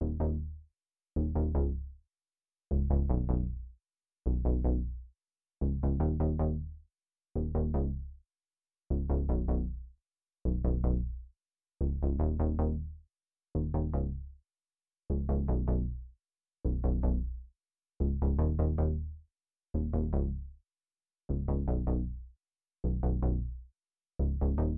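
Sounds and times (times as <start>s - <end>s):
bass melody loop in D sharp minor: 0.0s - 0.4s, 1.2s - 1.8s, 2.7s - 3.6s, 4.3s - 4.9s, 5.6s - 6.6s, 7.4s - 8.0s, 9.0s - 9.7s, 10.5s - 11.1s, 11.9s - 12.8s, 15.1s - 16.0s, 16.7s - 17.3s, 18.0s - 19.0s, 19.8s - 20.4s, 21.3s - 22.1s, 22.9s - 23.5s, 24.2s - 24.7s.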